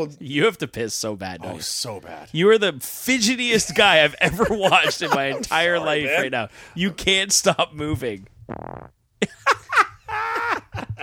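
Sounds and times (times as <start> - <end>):
speech: 0.0 - 9.6
laughter: 3.5 - 7.0, 9.2 - 11.0
fart noises: 8.4 - 9.0.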